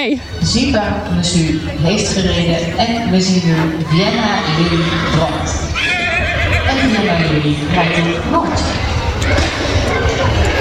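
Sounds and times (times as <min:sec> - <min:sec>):
speech: 0:00.0 - 0:06.0, 0:06.8 - 0:10.0
constant noise: 0:00.0 - 0:10.5
horse whinnying at an equestrian competition in a riding ring: 0:03.9 - 0:08.3.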